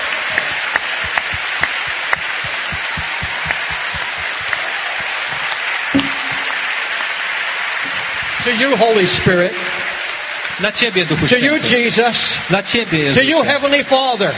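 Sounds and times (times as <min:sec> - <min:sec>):
sharper individual claps near the front: 0:00.0 - 0:08.5
large audience applause: 0:00.0 - 0:11.9
speech: 0:08.4 - 0:09.7, 0:10.6 - 0:14.3.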